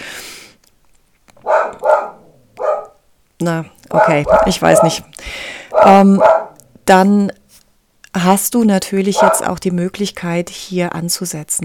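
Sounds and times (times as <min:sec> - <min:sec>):
dog barking: 0:01.4 - 0:03.0, 0:03.9 - 0:05.1, 0:05.7 - 0:06.6, 0:09.2 - 0:09.5
speech: 0:03.4 - 0:07.4, 0:08.2 - 0:11.6.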